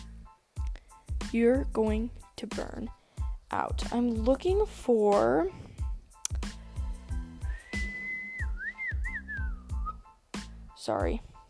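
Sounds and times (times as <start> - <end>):
speech: 1.3 - 5.7, 10.9 - 11.3
person whistling a long steady note and short wavering tune: 7.4 - 10.1.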